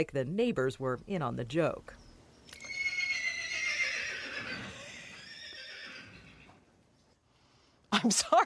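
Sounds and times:
speech: 0.0s - 2.6s, 8.0s - 8.4s
horse neighing: 2.6s - 6.6s.

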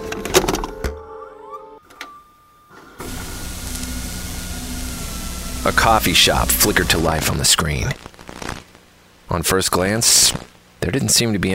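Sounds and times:
videotape playback hiss: 0.0s - 11.5s
videotape pushed into a tape player, mechanical whirring and clicking: 1.9s - 8.6s
speech: 5.6s - 8.1s, 9.3s - 11.5s.

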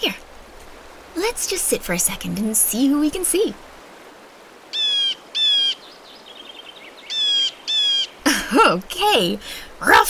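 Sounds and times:
speech: 1.2s - 3.7s, 8.5s - 10.0s
blue jay calling harshly: 4.6s - 8.3s
faint chirps from other birds: 4.7s - 8.3s.

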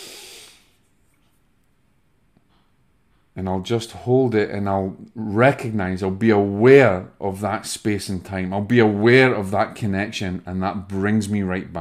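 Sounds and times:
soft breath exhaled during meditation: 0.0s - 0.8s
speech: 3.4s - 11.7s.

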